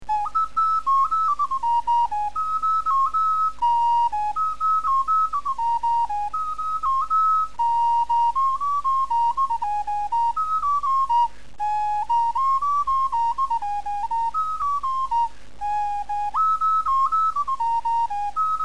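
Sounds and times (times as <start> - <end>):
globular flute playing: 0.0 - 18.6.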